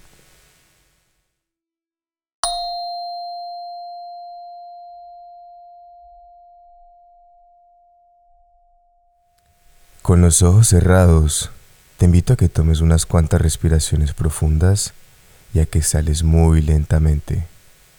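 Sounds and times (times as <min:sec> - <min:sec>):
meditation bell ringing: 0:02.4 - 0:09.3
speech: 0:10.1 - 0:17.5.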